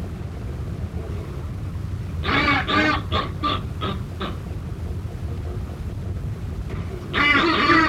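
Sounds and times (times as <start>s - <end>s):
low-pitched background rumble: 0.0s - 7.8s
northern subspecies Buller's albatross harsh nasal calls: 2.2s - 4.4s, 7.1s - 7.8s.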